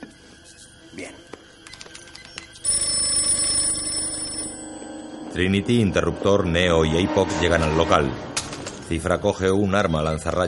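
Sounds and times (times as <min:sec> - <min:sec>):
speech: 0:01.0 - 0:01.4, 0:05.4 - 0:08.3, 0:08.9 - 0:10.4
bright continuous electronic telephone ring: 0:01.6 - 0:05.2.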